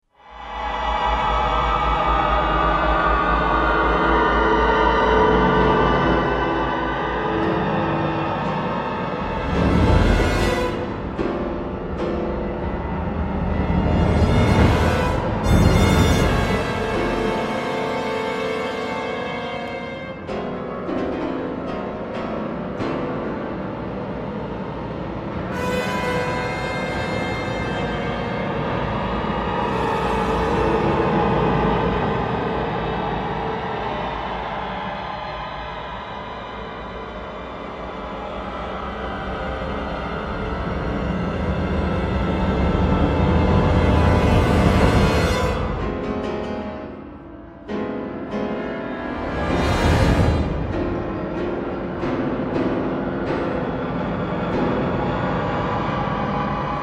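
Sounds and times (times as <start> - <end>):
piano: 0.0 - 56.8
orchestra: 5.7 - 32.5, 41.0 - 56.8.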